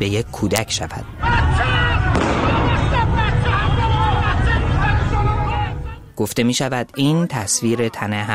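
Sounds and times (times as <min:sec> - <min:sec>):
speech: 0:00.0 - 0:01.7, 0:06.2 - 0:08.3
agitated crowd shouting and talking in a street: 0:01.0 - 0:06.1
gunshot in a street: 0:02.1 - 0:03.0.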